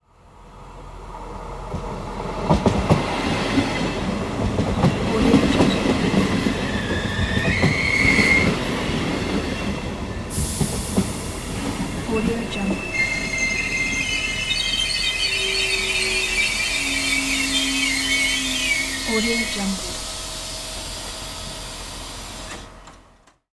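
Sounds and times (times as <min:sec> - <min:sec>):
train stopping: 0:00.3 - 0:23.2.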